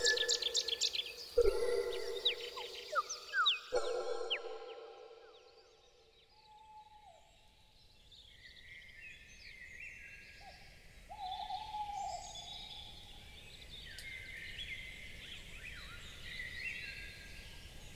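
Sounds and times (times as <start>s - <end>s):
Tawny Owl hooting in Zarnesti Gorge, Romania: 0.0s - 0.6s, 1.4s - 4.8s
songbirds chirping and trilling in a dawn chorus: 0.0s - 17.9s.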